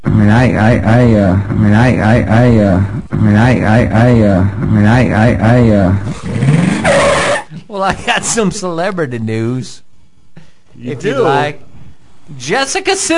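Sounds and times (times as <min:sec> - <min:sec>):
voice imitating a car engine struggling to start: 0:00.0 - 0:07.4
speech: 0:00.2 - 0:07.0, 0:07.8 - 0:09.8, 0:10.8 - 0:11.6, 0:12.3 - 0:13.1.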